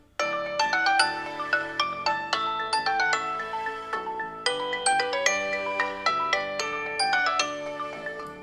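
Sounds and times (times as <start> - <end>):
Tile telephone sound: 0.2 - 8.4.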